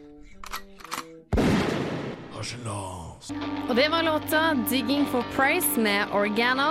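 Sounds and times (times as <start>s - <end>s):
shotgun blast: 1.3s - 2.3s
speech: 2.4s - 6.6s.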